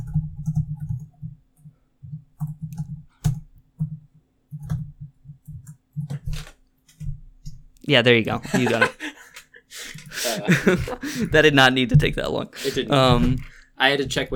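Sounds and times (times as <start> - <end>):
typing on a computer keyboard: 0.0 - 7.6
speech: 7.9 - 9.1, 10.4 - 14.3
laughter: 8.3 - 13.5
steady low hum: 9.9 - 14.3.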